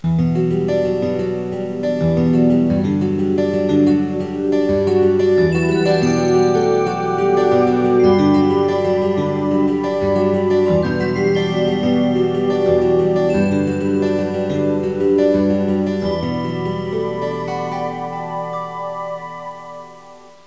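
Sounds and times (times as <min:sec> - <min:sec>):
pop music ringtone: 0:00.5 - 0:20.2.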